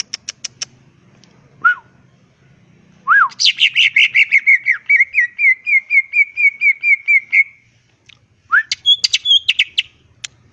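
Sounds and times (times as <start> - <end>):
greater green leafbird singing vigorously: 3.0 - 7.6, 8.5 - 10.5.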